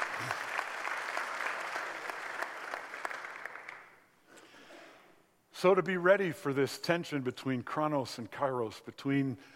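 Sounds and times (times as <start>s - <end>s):
room full of people clapping: 0.0s - 4.1s
speech: 5.6s - 9.5s.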